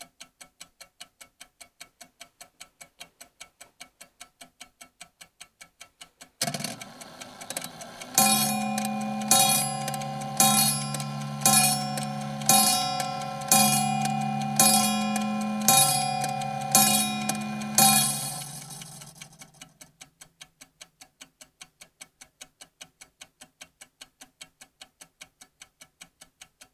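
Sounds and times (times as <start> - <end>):
small carriage clock striking: 0.1 - 26.7.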